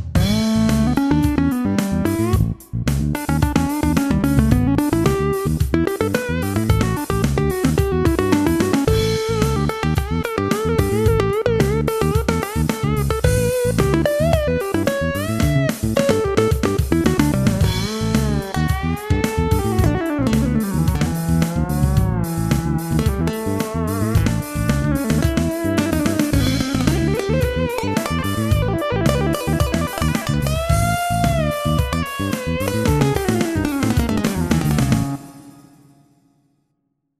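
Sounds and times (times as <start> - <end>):
synthesizer solo: 0.2 - 2.5, 3.2 - 36.1.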